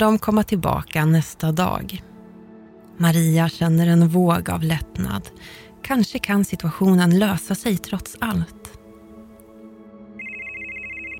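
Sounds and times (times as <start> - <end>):
speech: 0.0 - 2.1, 3.0 - 8.8
bright rapidly warbling electronic telephone ring: 10.2 - 11.1.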